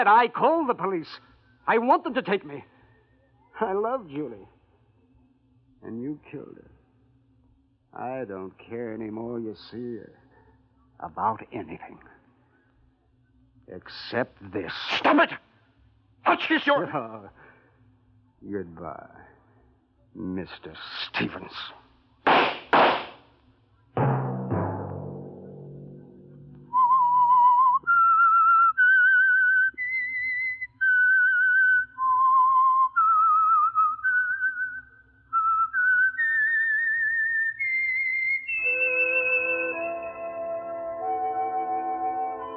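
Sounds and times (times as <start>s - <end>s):
speech: 0.0s - 2.7s, 3.6s - 4.6s, 5.8s - 6.7s, 7.9s - 10.2s, 11.0s - 12.1s, 13.7s - 15.5s, 16.2s - 17.4s, 18.4s - 19.3s, 20.2s - 22.5s
heavy thumps: 22.3s - 23.2s
fuller musical accompaniment: 24.0s - 27.3s, 38.6s - 42.5s
lone whistler whistling a slow wandering melody: 26.7s - 42.5s.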